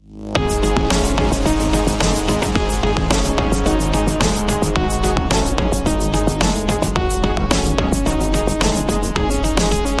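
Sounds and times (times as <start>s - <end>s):
bass boosted theme music: 0.0s - 9.9s.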